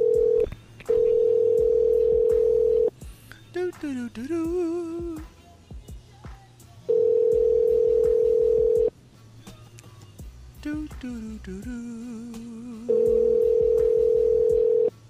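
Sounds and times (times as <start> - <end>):
ringback tone of an outgoing phone call: 0.0 - 2.9, 6.9 - 8.9, 12.9 - 14.9
speech: 3.8 - 5.3, 11.0 - 12.4.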